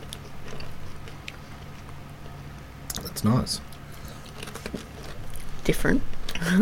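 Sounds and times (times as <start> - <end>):
munching thick dry turkey-and-stuffing-flavoured potato chips: 0.0 - 2.1, 2.9 - 5.7
speech: 3.2 - 3.7, 5.6 - 6.6.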